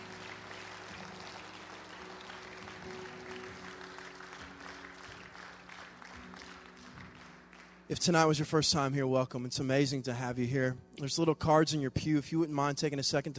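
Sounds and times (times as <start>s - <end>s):
church audience applauding: 0.0s - 8.1s
speech: 7.9s - 13.3s.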